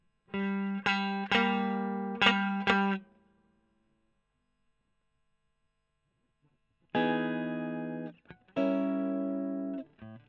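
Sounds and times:
electric guitar recorded with a Gefell microphone: 0.3 - 3.1, 6.9 - 10.2.

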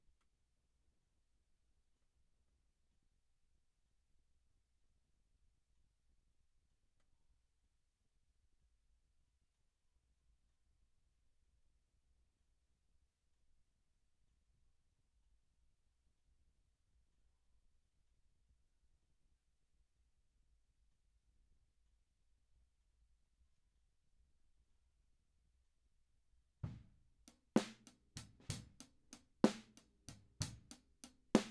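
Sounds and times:
drums: 26.6 - 31.4.

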